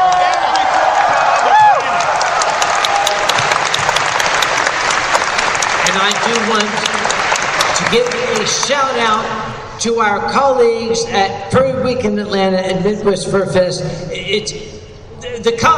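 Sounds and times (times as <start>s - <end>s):
whoop or whistle from the audience: 0.0s - 2.0s
large audience at a convention applauding: 0.0s - 9.0s
speech: 7.9s - 14.8s, 15.4s - 15.7s.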